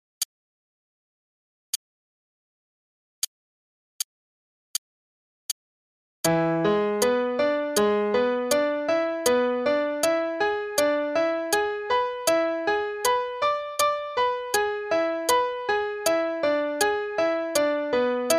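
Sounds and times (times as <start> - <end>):
broken V7 chords in A major up and down in root position and inversions: 6.3 - 18.3.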